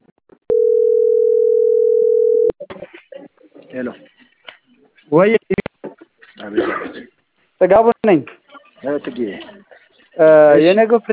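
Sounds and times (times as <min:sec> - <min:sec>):
telephone electronic beep while placing a call: 0:00.5 - 0:02.5
speech: 0:03.8 - 0:04.1, 0:05.1 - 0:05.5, 0:07.7 - 0:09.5, 0:10.2 - 0:11.1.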